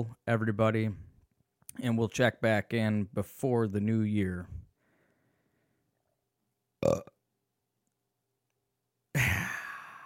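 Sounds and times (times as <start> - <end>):
speech: 0.0 - 1.0, 1.8 - 4.6, 6.8 - 7.1
person burping: 6.8 - 7.2, 9.1 - 10.0.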